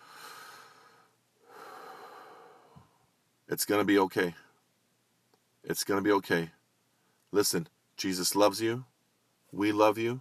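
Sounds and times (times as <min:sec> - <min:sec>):
person taking a deep breath: 0:00.0 - 0:03.0
speech: 0:03.5 - 0:04.4, 0:05.7 - 0:06.6, 0:07.3 - 0:08.9, 0:09.5 - 0:10.1.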